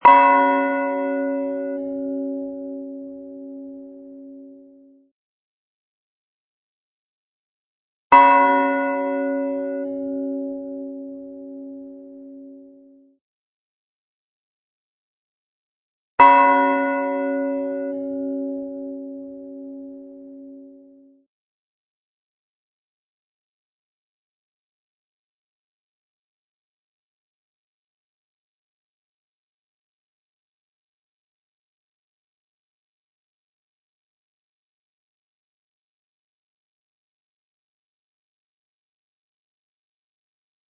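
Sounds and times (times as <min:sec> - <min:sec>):
bell: 0:00.0 - 0:05.1, 0:08.1 - 0:13.2, 0:16.2 - 0:21.3.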